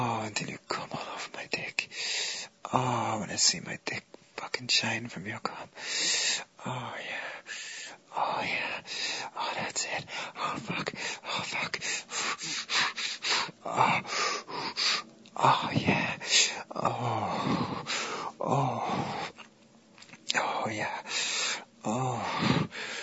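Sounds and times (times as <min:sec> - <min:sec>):
speech: 0:00.2 - 0:02.1, 0:02.7 - 0:07.1, 0:08.4 - 0:12.8, 0:15.4 - 0:16.2
heavy uneven breathing with sharp gasps: 0:01.9 - 0:02.5, 0:05.6 - 0:19.5, 0:20.3 - 0:23.0
breathy moans: 0:10.3 - 0:19.5, 0:20.3 - 0:23.0.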